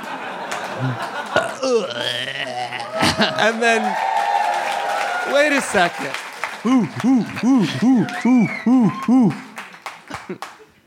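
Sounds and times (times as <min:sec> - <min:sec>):
people chuckling and laughing: 0:00.0 - 0:03.9, 0:06.5 - 0:10.6
long drawn-out belch: 0:00.8 - 0:03.4, 0:06.6 - 0:09.3
speech: 0:00.8 - 0:04.1, 0:05.3 - 0:09.4, 0:10.3 - 0:10.5.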